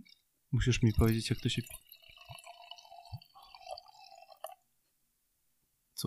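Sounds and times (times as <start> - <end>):
sake pouring from a 720 ml bottle into a glass: 0.0 - 4.7
speech: 0.5 - 1.9.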